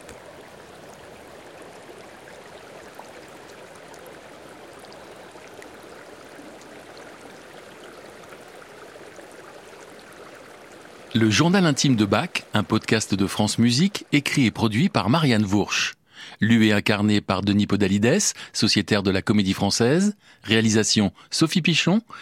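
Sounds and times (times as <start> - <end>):
river stream murmuring: 0.0 - 15.4
speech: 11.1 - 22.2.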